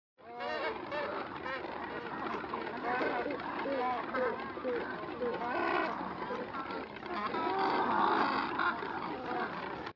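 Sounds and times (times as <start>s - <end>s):
Double-crested cormorant: 0.2s - 9.9s.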